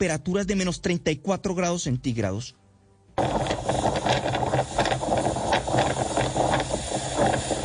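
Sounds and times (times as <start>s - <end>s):
speech: 0.0s - 2.6s, 3.2s - 3.5s
strong winter storm winds of up to 120 km/h roaring: 3.2s - 7.6s.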